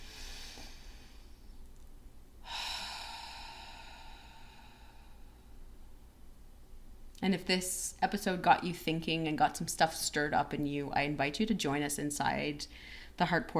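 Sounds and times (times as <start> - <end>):
deep breath in and out: 0.0 - 1.6, 2.4 - 5.8, 12.7 - 13.2
speech: 7.2 - 13.5.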